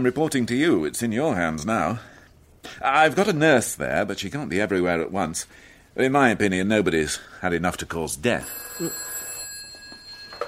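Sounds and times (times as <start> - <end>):
speech: 0.0 - 9.1
telephone ringing with an electronic trill: 8.3 - 10.4.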